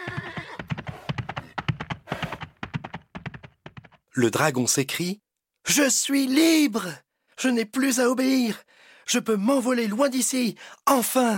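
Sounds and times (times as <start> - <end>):
horse whinnying: 0.0 - 1.1
horse hooves galloping: 0.0 - 4.0
speech: 4.2 - 11.3.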